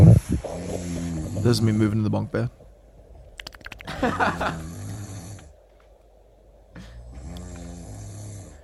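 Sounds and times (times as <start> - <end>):
person snoring loudly: 0.0 - 1.6, 4.3 - 5.5, 6.8 - 8.6
speech: 1.4 - 2.6, 4.0 - 4.7
laughter: 3.9 - 4.7.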